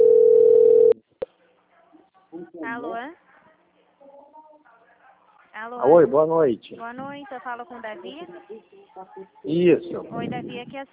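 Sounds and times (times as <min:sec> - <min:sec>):
steady low-pitched telephone tone while a call is being placed: 0:00.0 - 0:01.0
speech: 0:02.7 - 0:03.2, 0:05.6 - 0:10.9.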